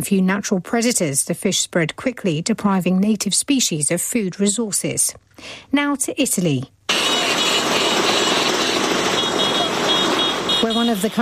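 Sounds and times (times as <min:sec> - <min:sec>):
speech: 0:00.0 - 0:06.8, 0:10.6 - 0:11.2
many Vespa scooter engines buzzing and idling in a parade: 0:06.9 - 0:11.2.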